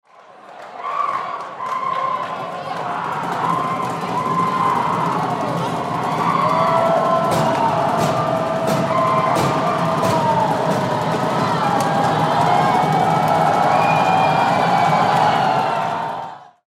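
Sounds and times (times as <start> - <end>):
arena crowd stomping: 1.6 - 16.6
drumming in an arena: 2.3 - 16.4.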